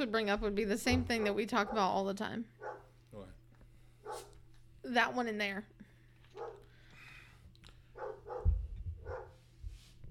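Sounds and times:
speech: 0:00.0 - 0:03.4, 0:04.1 - 0:05.8
dog barking: 0:01.1 - 0:02.0, 0:02.6 - 0:02.9, 0:04.0 - 0:04.4, 0:06.4 - 0:06.7, 0:08.0 - 0:09.4.

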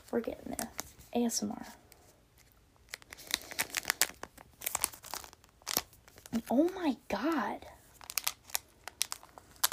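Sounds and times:
speech: 0:00.1 - 0:01.8, 0:06.5 - 0:07.7
plastic packaging being torn and pulled open by hand: 0:02.4 - 0:06.8, 0:07.9 - 0:09.7.

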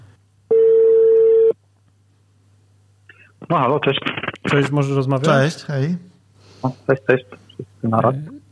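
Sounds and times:
telephone ringback tone as a phone call is placed: 0:00.5 - 0:01.6
speech: 0:03.5 - 0:08.4.

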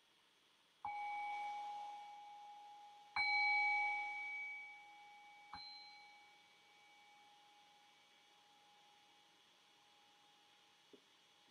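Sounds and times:
meditation bell being struck: 0:00.9 - 0:08.0.

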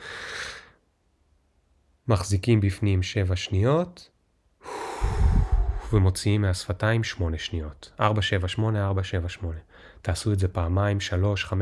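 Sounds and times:
deep inhale: 0:00.0 - 0:00.8, 0:04.6 - 0:06.0, 0:09.7 - 0:10.0
speech: 0:02.1 - 0:04.1, 0:05.0 - 0:05.2, 0:05.9 - 0:11.6.

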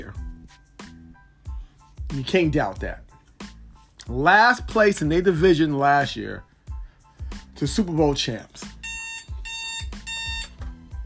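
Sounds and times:
speech: 0:02.1 - 0:03.0, 0:04.1 - 0:06.5, 0:07.6 - 0:08.7
alarm clock ringing with bright high electronic beeping: 0:08.8 - 0:10.8.

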